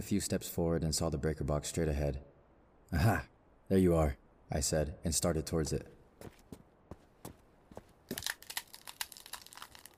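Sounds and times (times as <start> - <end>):
speech: 0.0 - 6.4
bundle of twigs crunching underfoot: 7.7 - 9.9.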